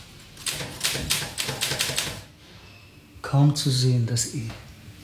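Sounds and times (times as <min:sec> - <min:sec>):
typewriter keys clattering: 0:00.4 - 0:02.3
speech: 0:03.3 - 0:04.7.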